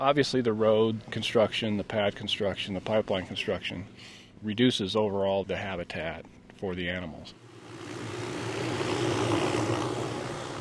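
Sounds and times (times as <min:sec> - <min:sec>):
speech: 0:00.0 - 0:07.4
steady engine buzz with a rotor-like drone: 0:07.4 - 0:10.6.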